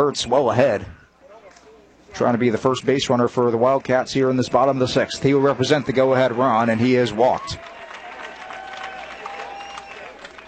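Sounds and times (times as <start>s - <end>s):
speech: 0.1s - 1.0s, 2.1s - 7.7s
crowd applauding and cheering: 4.6s - 10.4s.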